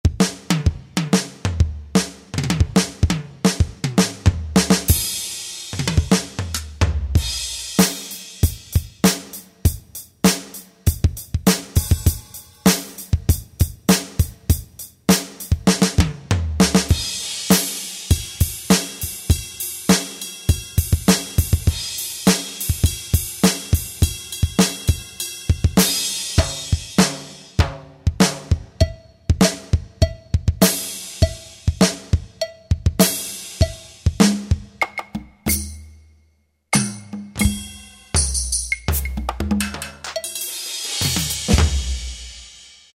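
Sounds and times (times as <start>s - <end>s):
real drums: 0.0s - 36.0s, 36.7s - 42.9s.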